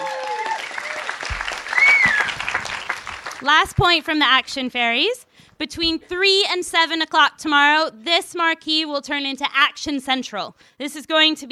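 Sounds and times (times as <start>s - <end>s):
audience applause inside a marquee: 0.0s - 3.4s
speech: 3.4s - 11.5s.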